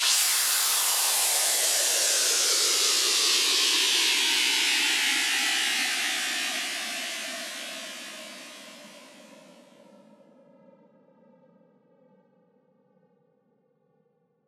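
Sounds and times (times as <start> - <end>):
formant white noise sweep down house effect: 0.0 - 9.7.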